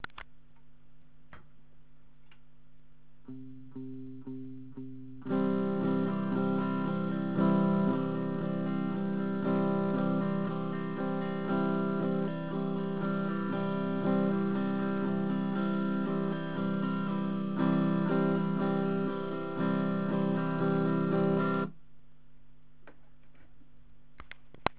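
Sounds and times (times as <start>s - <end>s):
strumming: 3.3s - 21.7s.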